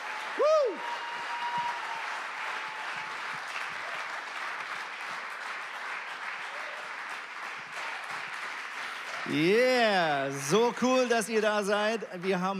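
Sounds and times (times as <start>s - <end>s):
crowd clapping: 0.0s - 12.5s
speech: 9.3s - 12.5s.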